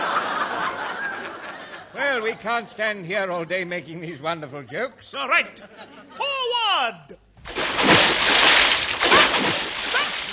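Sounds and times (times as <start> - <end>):
laughter: 0.0 - 2.0, 4.0 - 6.3
speech: 2.2 - 7.2
steady splashing and sloshing of water from wading: 7.4 - 10.3.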